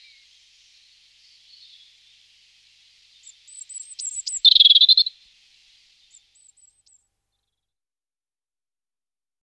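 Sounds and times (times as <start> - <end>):
European robin song: 0.0 - 7.0.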